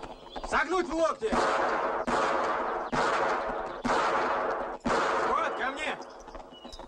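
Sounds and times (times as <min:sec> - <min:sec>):
speech: 0:00.5 - 0:02.0
gunfire bursts during shooting practice: 0:01.2 - 0:06.0.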